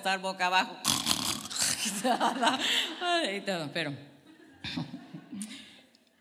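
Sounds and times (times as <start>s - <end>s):
speech: 0.0s - 1.1s, 1.8s - 4.9s
person imitating snoring with a raspy throaty snort: 0.8s - 1.9s
laughter: 1.6s - 3.2s, 4.3s - 5.5s.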